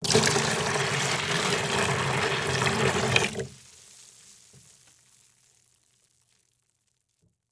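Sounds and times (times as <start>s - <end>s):
liquid water pouring into a plastic bucket: 0.0s - 4.0s.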